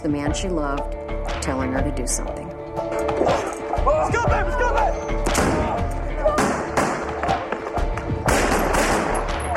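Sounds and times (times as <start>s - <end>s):
speech: 0.0s - 4.8s
gunfire from a guard's weapon as he returns fire: 5.2s - 7.4s, 8.2s - 9.4s.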